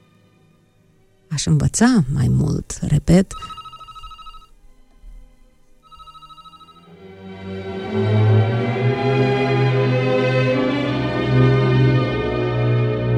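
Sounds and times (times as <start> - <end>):
music: 0.0 - 13.1
speech: 1.4 - 3.6
electronic telephone ringing: 3.2 - 5.1, 5.8 - 7.0.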